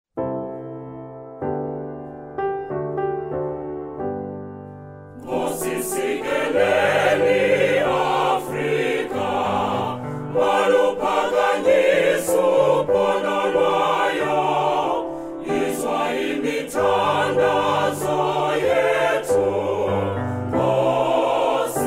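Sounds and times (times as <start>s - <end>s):
piano: 0.1s - 21.8s
choir singing a national anthem: 5.2s - 21.8s.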